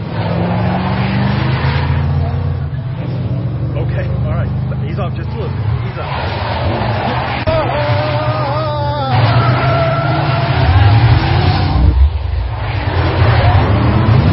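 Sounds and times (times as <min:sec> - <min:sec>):
powerful car engine roaring while driving fast: 0:00.0 - 0:14.3
voices talking: 0:02.2 - 0:10.9.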